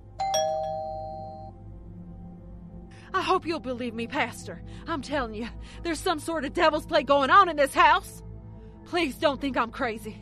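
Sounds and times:
doorbell at the front door of a house chiming: 0.2 - 1.6
speech: 3.2 - 8.2, 8.9 - 10.2.

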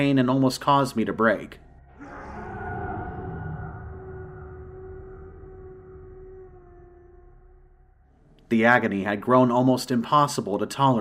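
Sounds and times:
speech: 0.0 - 1.6, 8.5 - 11.0
anguished, angry creature howling: 1.9 - 8.0.

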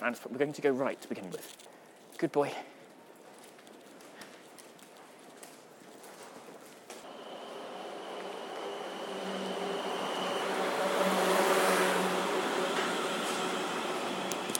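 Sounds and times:
speech: 0.0 - 2.8
faint tonal whines of an arriving train: 7.1 - 14.5
train arriving at station platform with a rising rumble: 7.1 - 14.5.

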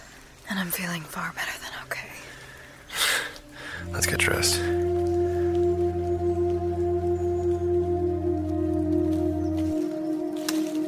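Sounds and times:
steady rain pattering and hissing: 0.0 - 10.8
speech: 0.5 - 2.1, 3.8 - 4.8
low constant droning hum: 3.7 - 10.8.

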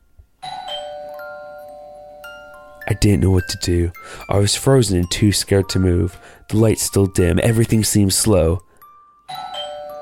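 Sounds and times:
doorbell ringing with a two-note chime: 0.4 - 6.2, 8.8 - 9.9
speech: 2.9 - 8.7.

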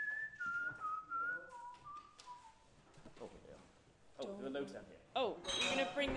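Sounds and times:
person whistling a bouncy disco tune: 0.0 - 2.7
speech: 4.2 - 6.1.

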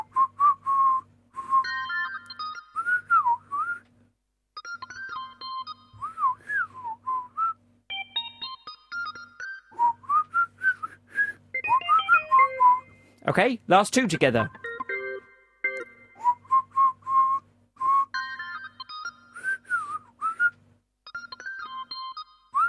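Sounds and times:
people whistling a melodic tune together: 0.0 - 3.8, 4.8 - 7.6, 8.9 - 13.0, 15.8 - 22.6
low steady hum: 0.0 - 22.6
speech: 13.3 - 14.6.

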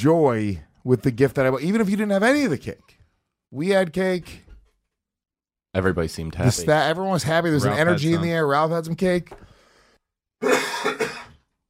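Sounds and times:
speech: 0.0 - 4.4, 5.8 - 9.5
human cough picked up by a microphone on a hot set: 10.4 - 11.5.

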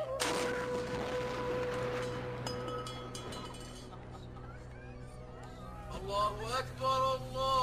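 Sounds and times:
Ramadan iftar cannon firing: 0.2 - 2.5
speech: 6.3 - 7.6.

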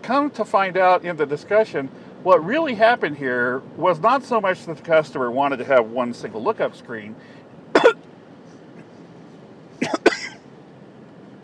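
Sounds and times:
speech: 0.0 - 7.9
person coughing: 7.8 - 8.0, 9.8 - 10.4.

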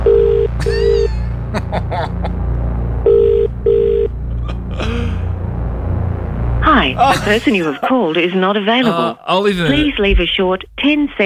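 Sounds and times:
low rumble: 0.0 - 8.7, 9.6 - 11.2
laughter: 0.6 - 2.3, 4.3 - 5.3, 6.8 - 9.9
phone ringback tone in double-rings: 3.1 - 4.1
speech: 7.0 - 11.2.

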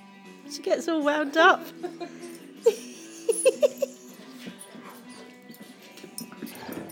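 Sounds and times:
speech: 0.5 - 2.9
laughter: 1.7 - 4.2
dogs growling while play-fighting: 3.9 - 6.9.

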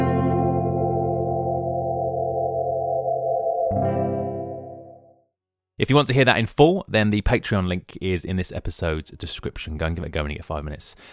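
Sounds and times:
electric guitar drenched in echo and effects with swelling feedback: 0.0 - 5.2
speech: 5.8 - 11.1.

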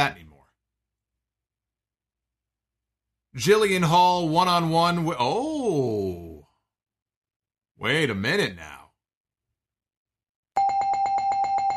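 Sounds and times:
speech: 0.0 - 0.2, 3.4 - 6.0, 7.8 - 8.8
electric bell sound effect ringing in a rapid trill: 10.6 - 11.7.

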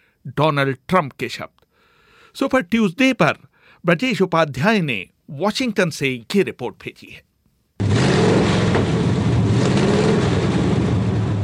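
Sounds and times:
speech: 0.2 - 1.6, 2.3 - 7.3
dirt track racing car engines revving: 7.8 - 11.4.

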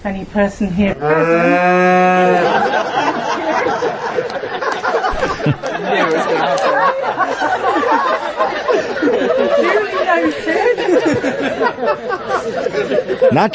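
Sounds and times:
speech: 0.0 - 13.5
cow mooing during a wedding ceremony: 1.0 - 2.6
wedding guests laughing: 1.1 - 13.5
wedding guests' crowd chatter: 1.3 - 13.5.

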